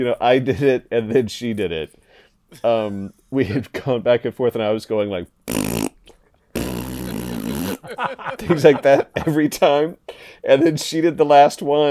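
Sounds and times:
speech: 0.0 - 5.4, 7.9 - 11.8
breathy vocal burst: 5.5 - 7.9, 10.1 - 10.4
voice making a buzzing raspberry imitating a fart: 5.5 - 8.0
laughter: 7.0 - 9.7.

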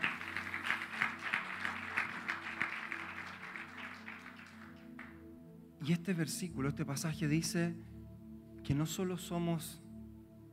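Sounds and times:
congregation clapping: 0.0 - 5.2
speech: 5.8 - 7.9, 8.7 - 9.8.

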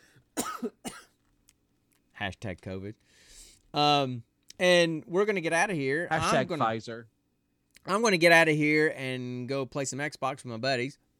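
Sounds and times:
harsh raspy coughs: 0.4 - 1.2
speech: 2.2 - 7.2, 7.8 - 11.1
faint breath: 3.0 - 3.7.

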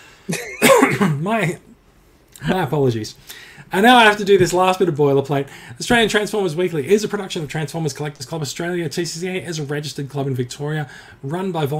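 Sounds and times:
speech: 0.3 - 0.5, 1.2 - 1.7, 2.4 - 11.7
throat clearing: 0.3 - 1.2
person coughing: 0.3 - 1.3.

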